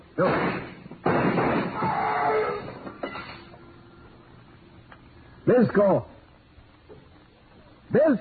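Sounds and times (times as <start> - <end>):
speech: 0.2 - 0.6, 5.5 - 6.1, 7.9 - 8.2
gunshot fired through a door: 0.2 - 1.8.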